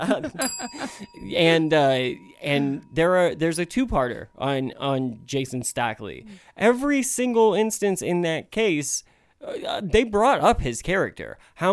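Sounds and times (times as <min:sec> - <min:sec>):
bright bell ringing: 0:00.0 - 0:06.4
speech: 0:00.0 - 0:11.7.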